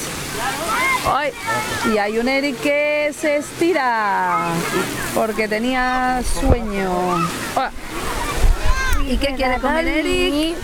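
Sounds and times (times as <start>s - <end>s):
wave pool water rushing at a water park: 0.0s - 10.6s
children's voices and shouts at a crowded water park: 0.4s - 2.1s, 3.5s - 10.6s
speech: 0.4s - 8.1s, 9.1s - 10.6s.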